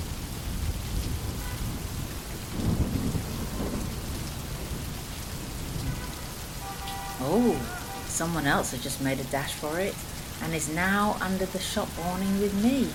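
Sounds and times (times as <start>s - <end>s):
steady rain pouring outside a shop awning: 0.0s - 12.9s
low rumbling thunder: 0.2s - 8.1s
speech: 7.2s - 12.9s.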